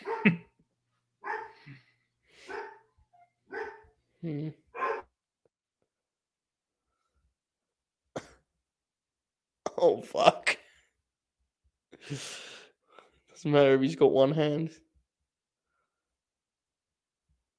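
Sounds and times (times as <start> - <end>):
dog barking: 0.0 - 0.4, 1.2 - 1.8, 2.4 - 2.9, 3.5 - 3.9, 4.8 - 5.1
speech: 0.2 - 0.5, 4.2 - 4.6, 10.1 - 10.4, 13.4 - 14.9.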